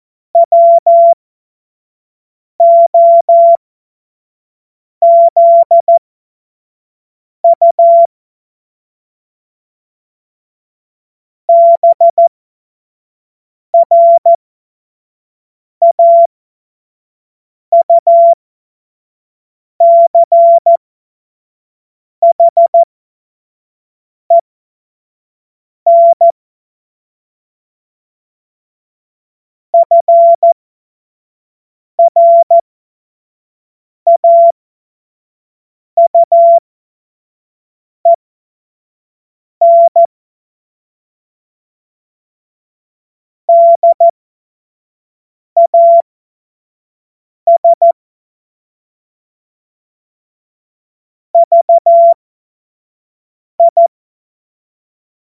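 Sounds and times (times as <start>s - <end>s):
CW morse code beeps: 0.4s - 1.2s, 2.6s - 3.6s, 5.0s - 6.0s, 7.5s - 8.1s, 11.5s - 12.3s, 13.8s - 14.4s, 15.8s - 16.3s, 17.7s - 18.4s, 19.8s - 20.8s, 22.2s - 22.9s, 25.9s - 26.3s, 29.8s - 30.6s, 32.0s - 32.6s, 34.1s - 34.5s, 36.0s - 36.6s, 39.6s - 40.1s, 43.5s - 44.1s, 45.6s - 46.1s, 47.5s - 48.0s, 51.4s - 52.2s, 53.6s - 53.9s.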